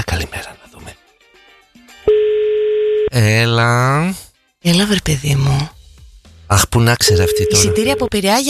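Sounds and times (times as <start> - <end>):
ringback tone of an outgoing phone call: 2.1 - 3.1, 7.1 - 8.1
speech: 3.2 - 5.8, 6.5 - 8.4.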